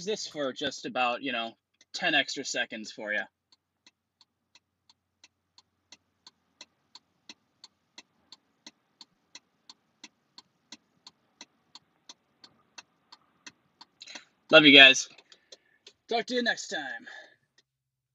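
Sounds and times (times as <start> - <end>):
speech: 0.0 - 3.4, 14.5 - 15.2, 16.1 - 17.2
truck hazard lights ticking: 3.4 - 16.2.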